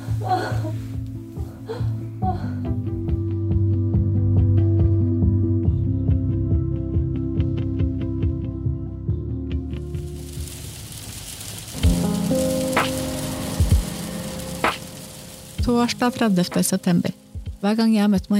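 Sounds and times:
music: 0.0s - 18.3s
heavy rain drumming on a car roof: 9.7s - 17.6s
speech: 15.8s - 18.3s.

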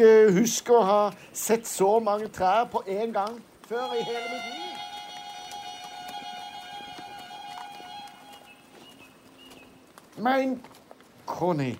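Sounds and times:
speech: 0.0s - 4.7s, 10.2s - 11.7s
horse hooves clip-clopping at an uneven trotting pace while riding: 0.0s - 11.7s
steady high ringing drone: 3.8s - 8.6s.

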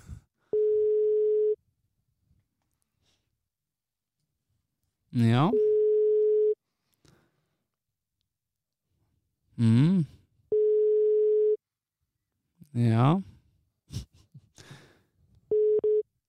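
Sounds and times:
telephone ringback tone while calling a number: 0.5s - 1.6s, 5.5s - 6.6s, 10.5s - 11.6s, 15.5s - 16.0s
speech: 5.2s - 5.6s, 12.8s - 13.2s
person murmuring: 9.6s - 10.2s.

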